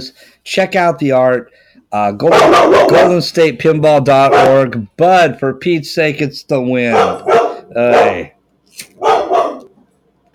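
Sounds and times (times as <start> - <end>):
speech: 0.0 - 9.2
dog barking: 2.2 - 3.2, 4.3 - 4.6, 6.9 - 8.3, 9.0 - 9.7.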